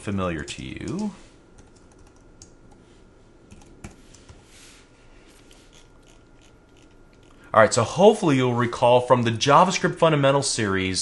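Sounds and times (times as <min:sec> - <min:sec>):
speech: 0:00.0 - 0:01.3, 0:07.6 - 0:11.0
faint hum: 0:00.0 - 0:11.0
typing on a computer keyboard: 0:00.8 - 0:02.5, 0:03.5 - 0:04.0.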